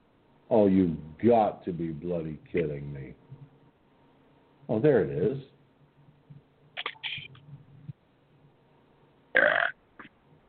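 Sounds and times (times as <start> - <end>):
speech: 0.5 - 3.3, 4.7 - 5.5
loud belch: 9.4 - 9.8.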